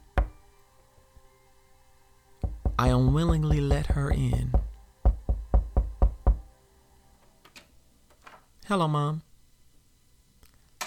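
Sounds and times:
woman banging heavily on a door: 2.4 - 6.5
speech: 2.8 - 4.6, 8.7 - 9.3.

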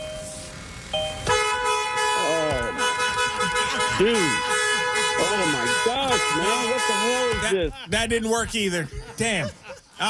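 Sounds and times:
car horn honking: 0.1 - 7.7
laughter: 2.3 - 4.5, 5.1 - 10.0
speech: 4.0 - 4.5, 5.8 - 10.0.

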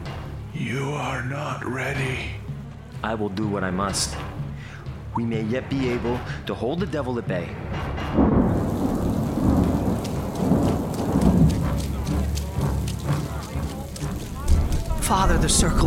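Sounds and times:
speech: 0.6 - 2.4, 3.0 - 4.4, 5.2 - 8.4, 15.1 - 15.8
heavy rain downpour: 8.2 - 15.8.

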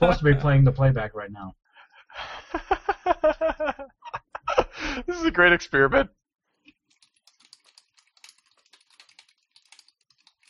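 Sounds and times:
laughter: 0.0 - 0.8, 2.1 - 5.3
speech: 0.0 - 1.6, 5.0 - 6.2
typing on a computer keyboard: 6.9 - 10.4.

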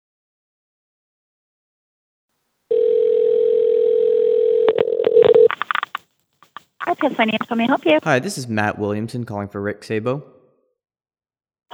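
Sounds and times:
telephone dial tone as a phone call is placed: 2.7 - 6.0
clicks and short telephone dialing beeps: 4.6 - 8.0
faint telephone blips: 5.2 - 8.0
speech: 7.0 - 10.4.

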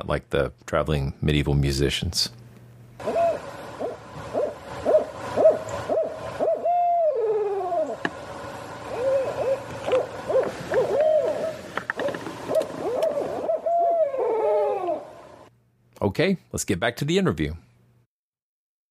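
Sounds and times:
speech: 0.0 - 2.4, 16.1 - 17.7
barred owl hooting: 3.0 - 8.1, 8.8 - 15.5.

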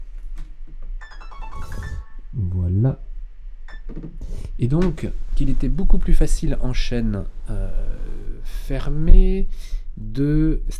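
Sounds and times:
phone melodic electronic ringtone: 1.0 - 2.3
low rumbling background: 1.6 - 3.7, 4.3 - 10.7
speech: 4.0 - 7.9, 8.7 - 10.7.

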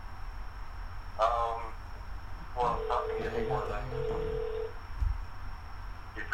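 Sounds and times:
voices talking: 1.2 - 1.8, 2.5 - 4.7, 6.2 - 6.3
telephone ringback tone on an outgoing call: 2.6 - 4.7.

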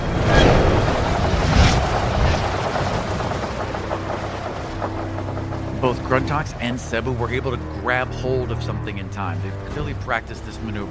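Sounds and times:
roaring rush of wind from a giant magical fan blasting ship sails: 0.0 - 6.8
low rumbling churn of a ship rocked violently: 0.0 - 10.8
speech: 5.8 - 10.8.

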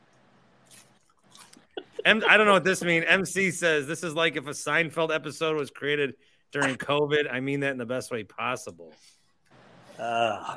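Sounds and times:
person crunching chewing on a cone: 0.6 - 1.7
laughter: 1.6 - 2.8
speech: 2.0 - 9.2, 10.0 - 10.5.

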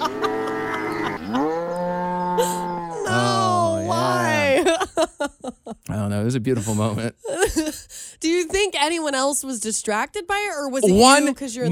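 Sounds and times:
laughter: 0.0 - 1.5, 2.4 - 7.9
person imitating a cow mooing: 0.0 - 4.6
speech: 5.5 - 7.7, 8.6 - 11.7.

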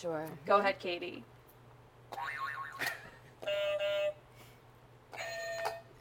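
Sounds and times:
speech: 0.0 - 1.4, 2.1 - 3.9
flat steady quiz buzzer buzz: 2.2 - 5.9.

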